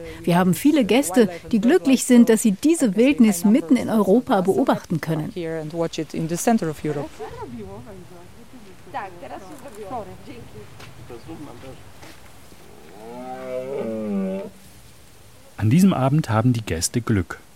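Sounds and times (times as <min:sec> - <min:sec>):
speech: 0:00.0 - 0:08.2, 0:08.9 - 0:11.9, 0:15.6 - 0:17.4
red deer stags roaring during the rut in a European wilderness: 0:12.5 - 0:14.7.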